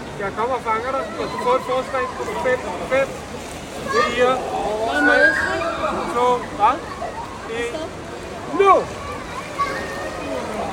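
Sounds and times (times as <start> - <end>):
children chattering and calling: 0.0 - 10.7
splashing water at a water park: 0.0 - 10.7
speech: 0.2 - 9.0.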